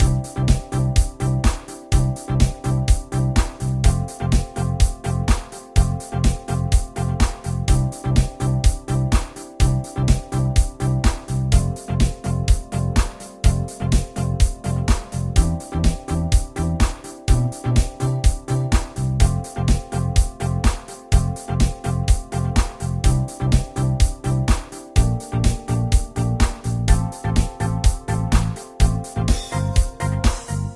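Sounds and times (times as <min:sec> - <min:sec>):
music loops: 0:00.0 - 0:30.7.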